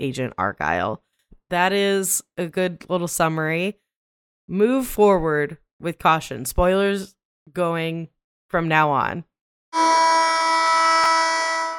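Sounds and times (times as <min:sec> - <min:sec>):
speech: 0:00.0 - 0:03.8, 0:04.5 - 0:10.2
loud harsh electronic alarm with steady buzzing tone: 0:09.8 - 0:11.7.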